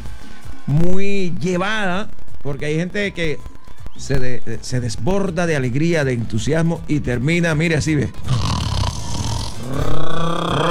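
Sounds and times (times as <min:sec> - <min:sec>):
speech: 0:00.7 - 0:08.4
voice imitating snoring: 0:08.1 - 0:10.6.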